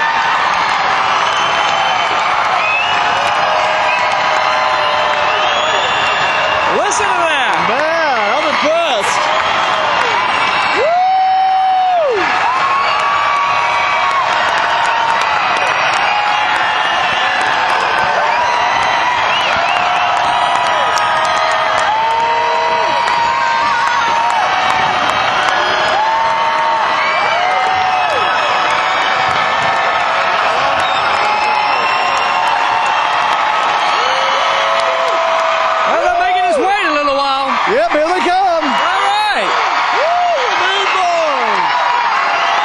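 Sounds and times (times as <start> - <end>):
huge concert crowd screaming and cheering in an arena: 0.0 - 42.6
whistle: 1.2 - 3.2, 5.3 - 6.8.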